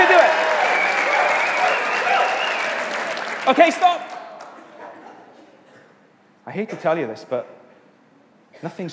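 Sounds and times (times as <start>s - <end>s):
crowd clapping and cheering: 0.0s - 4.8s
speech: 3.5s - 4.1s, 6.5s - 7.6s, 8.6s - 8.9s.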